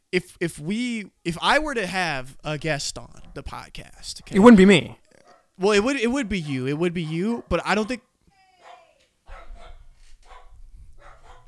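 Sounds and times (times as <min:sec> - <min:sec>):
speech: 0:00.1 - 0:05.0, 0:05.6 - 0:08.1
dogs barking: 0:03.0 - 0:03.6, 0:04.3 - 0:11.4.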